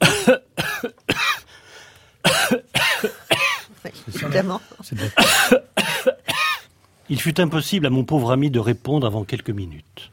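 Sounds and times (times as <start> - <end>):
harsh raspy coughing fit: 0.0 - 1.5, 2.2 - 4.4, 5.0 - 6.7
wheezy breath: 1.5 - 2.2
speech: 4.4 - 5.7, 7.1 - 10.1.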